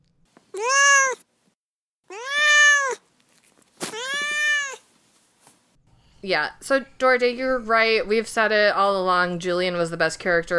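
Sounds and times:
cat meowing: 0.5 - 1.2, 2.1 - 3.0, 3.8 - 4.8
speech: 6.2 - 10.5.

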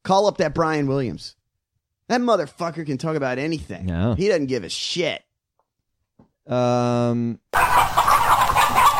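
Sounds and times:
speech: 0.1 - 1.4, 2.1 - 5.2, 6.5 - 8.0
flock of chickens clucking and squawking: 7.6 - 8.9
loud drawn-out crowing call: 7.6 - 8.9.

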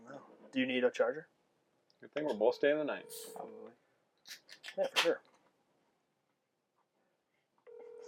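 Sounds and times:
faint noise: 0.0 - 8.0
speech: 0.2 - 1.4, 2.0 - 5.3
phone call ringing out over a speakerphone: 2.9 - 3.6, 7.7 - 8.0.

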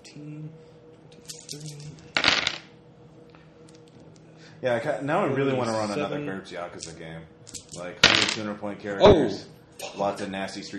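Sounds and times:
speech: 0.2 - 0.7, 1.5 - 2.0, 4.6 - 10.7
dice rolled for a damage roll in a tabletop roleplaying game: 2.2 - 2.6, 7.5 - 8.4.

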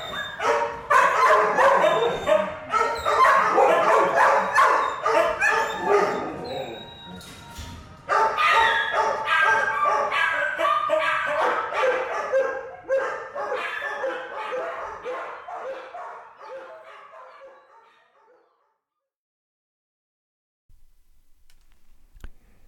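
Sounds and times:
many dogs barking, yelping and whimpering: 0.0 - 7.4, 8.0 - 18.8.

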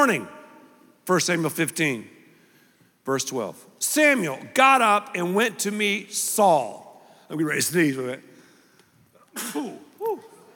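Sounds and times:
speech: 0.0 - 0.4, 1.1 - 2.2, 3.0 - 8.3, 9.4 - 10.3
sneeze: 9.3 - 10.3.

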